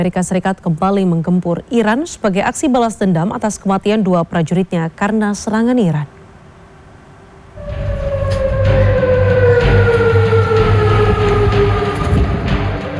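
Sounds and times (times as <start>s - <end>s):
speech: 0.0s - 6.2s
air raid warning siren wailing in Amman Jordan: 7.6s - 12.9s
deep rumble: 7.6s - 12.9s.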